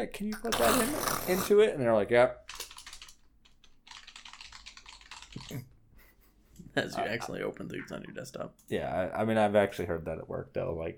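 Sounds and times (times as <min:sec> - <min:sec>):
speech: 0:00.0 - 0:02.5, 0:06.8 - 0:10.9
loud clacky computer keyboard typing: 0:02.4 - 0:05.6.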